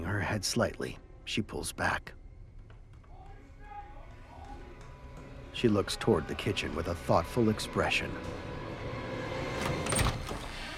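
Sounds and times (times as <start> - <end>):
speech: 0.1 - 2.2, 5.6 - 8.6
door eased open a crack with soft scrape and creak: 8.9 - 10.7.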